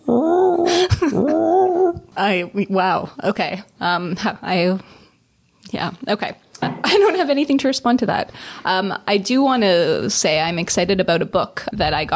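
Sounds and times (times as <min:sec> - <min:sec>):
person imitating a mournful manatee call: 0:00.0 - 0:02.1
speech: 0:02.2 - 0:05.0, 0:05.7 - 0:12.1.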